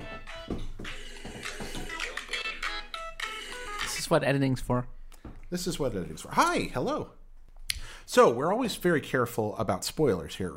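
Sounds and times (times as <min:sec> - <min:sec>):
mobile phone ringing with a bright melodic ringtone: 0:02.0 - 0:04.0
speech: 0:04.1 - 0:07.2, 0:08.1 - 0:10.5.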